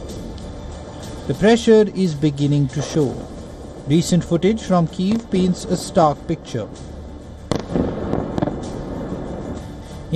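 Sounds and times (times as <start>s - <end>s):
dense rumbling background: 0.0s - 10.1s
speech: 1.3s - 3.3s, 3.9s - 6.9s
Russian missiles exploding on targets in a district of Kyiv: 7.5s - 9.6s.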